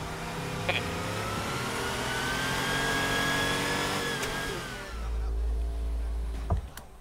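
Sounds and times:
car engine idling: 0.0s - 6.9s
car electric window motor whirring: 0.6s - 5.0s.

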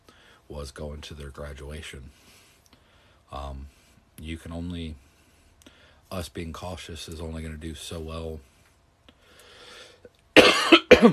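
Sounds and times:
speech: 0.5s - 2.4s, 3.3s - 5.1s, 6.1s - 8.5s, 10.9s - 11.1s
person coughing harshly: 10.4s - 11.1s.

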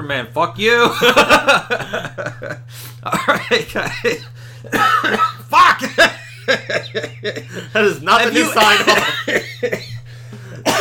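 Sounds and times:
speech: 0.0s - 1.9s, 3.0s - 5.3s, 7.6s - 9.8s
laughter: 0.8s - 10.7s
person coughing: 2.9s - 7.8s, 8.4s - 10.7s.

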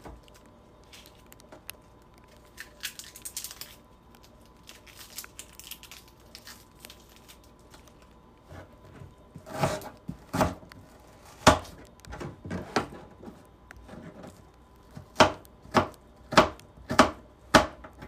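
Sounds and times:
knife chopping onion into small pieces for juice: 9.4s - 12.9s, 14.9s - 18.0s.

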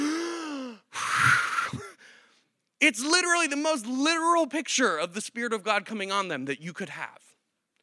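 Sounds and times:
person gasping sharp inhale: 0.0s - 2.5s
speech: 2.8s - 7.3s.

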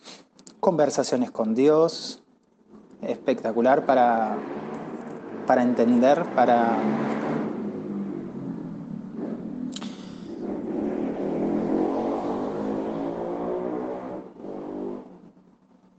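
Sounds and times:
speech: 0.7s - 2.2s, 3.0s - 4.6s, 5.5s - 7.1s
motorcycle engine passing by outside: 3.0s - 15.4s.

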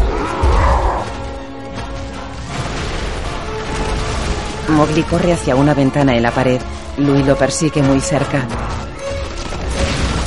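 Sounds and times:
low steady rumble: 0.0s - 7.0s
stone temple columns crashing as they are knocked down: 0.0s - 10.2s
speech: 4.7s - 8.8s.

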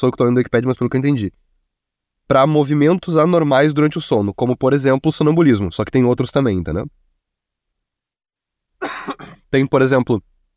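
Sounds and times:
speech: 0.0s - 1.5s, 2.3s - 7.0s, 8.8s - 10.3s
person coughing harshly: 8.8s - 9.5s.

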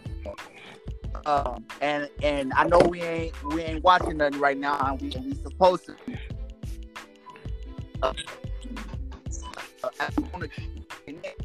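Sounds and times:
speech: 0.3s - 6.0s, 8.0s - 8.4s, 10.0s - 10.8s
choppy garbled voice audio of a phone call breaking up: 1.1s - 6.3s, 8.0s - 11.4s.

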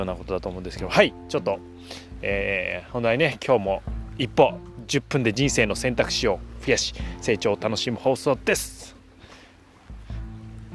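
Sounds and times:
speech: 0.0s - 9.0s
ocean waves washing against the shore: 2.7s - 10.7s.

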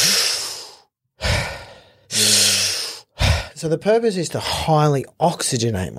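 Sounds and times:
breathing out in long deliberate exhalations: 0.0s - 3.6s
speech: 3.6s - 5.9s.

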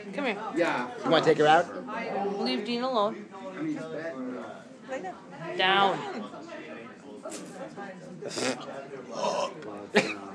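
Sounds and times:
speech: 0.0s - 6.6s, 7.2s - 10.3s
person belching: 8.3s - 9.6s.

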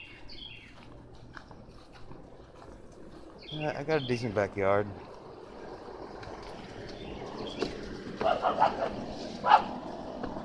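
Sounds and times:
steady outdoor hum: 0.0s - 10.4s
speech: 3.5s - 5.1s, 8.4s - 9.8s
dog barking in the backyard: 8.2s - 9.8s.

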